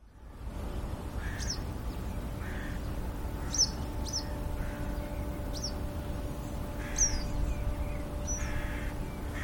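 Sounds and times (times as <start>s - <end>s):
steady low hum and rumble: 0.0s - 9.4s
Western yellow wagtail chirping: 1.2s - 9.4s.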